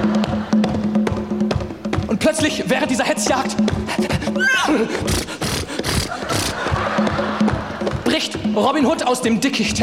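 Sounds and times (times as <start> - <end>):
laughter: 0.0 - 1.0, 3.9 - 8.6
speech: 2.2 - 5.4, 8.2 - 9.8
horse pulling a coach whinnying: 4.4 - 6.7
loud noisy bursts: 5.0 - 6.6.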